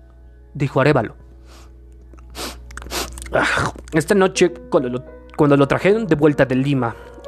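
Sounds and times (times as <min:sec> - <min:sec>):
speech: 0:00.6 - 0:01.7, 0:03.3 - 0:07.1
crunchy chewing of hard bread: 0:02.1 - 0:04.0.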